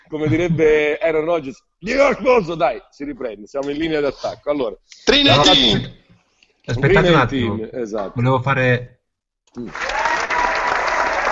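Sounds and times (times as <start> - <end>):
speech: 0.1 - 6.0, 6.6 - 10.0
applause: 9.5 - 11.3.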